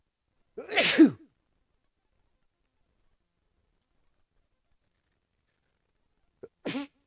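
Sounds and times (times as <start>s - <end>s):
person sneezing: 0.6s - 1.2s, 6.4s - 7.0s.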